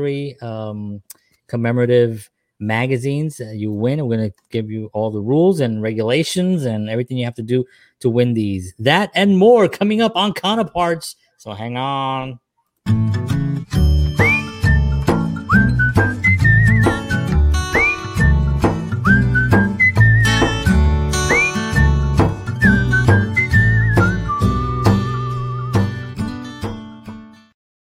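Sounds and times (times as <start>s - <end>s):
speech: 0.0s - 13.1s
full busy musical accompaniment: 12.9s - 26.8s
person whistling a sliding lilting tune: 14.1s - 26.0s.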